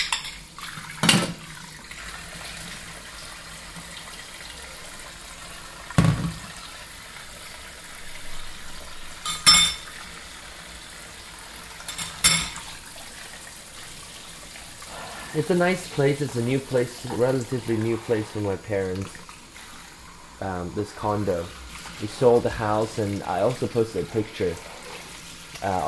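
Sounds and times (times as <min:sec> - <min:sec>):
water while washing a bowl in a kitchen: 0:00.0 - 0:25.8
crockery clinking while a bowl is washed in a kitchen: 0:09.2 - 0:10.0, 0:11.9 - 0:12.7
speech: 0:15.4 - 0:19.2, 0:20.4 - 0:24.7, 0:25.6 - 0:25.8.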